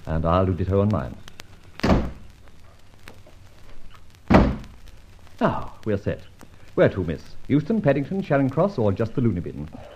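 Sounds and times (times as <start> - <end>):
speech: 0.1 - 1.3, 5.4 - 9.9
heavy door being shut: 1.8 - 2.2, 4.3 - 4.7.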